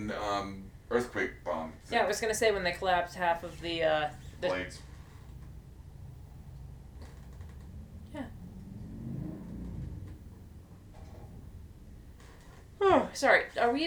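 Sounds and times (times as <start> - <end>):
speech: 0.0 - 4.9, 13.1 - 13.8
steady noise: 0.0 - 13.8
motorcycle driving by outside: 5.2 - 12.2.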